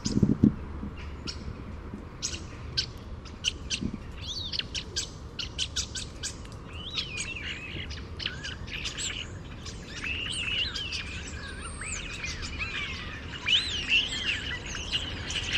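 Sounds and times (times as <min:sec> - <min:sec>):
bird chirps: 0:00.0 - 0:01.5, 0:02.2 - 0:15.5
steady background noise: 0:00.0 - 0:15.5.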